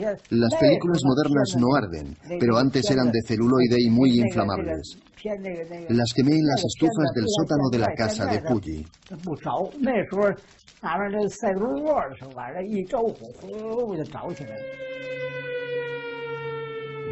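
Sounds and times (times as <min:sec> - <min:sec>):
speech: 0:00.0 - 0:15.4
air raid sirens wailing: 0:14.0 - 0:17.0.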